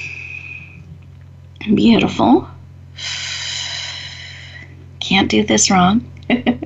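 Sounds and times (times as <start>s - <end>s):
deep breath in and out: 0.0s - 0.9s, 3.0s - 4.8s
faint low hum: 0.0s - 6.6s
speech: 1.6s - 3.2s, 5.1s - 6.6s.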